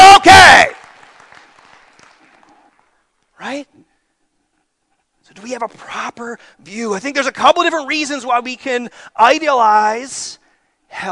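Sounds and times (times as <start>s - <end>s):
audience clapping and applauding: 0.0s - 3.1s
speech: 5.6s - 11.1s.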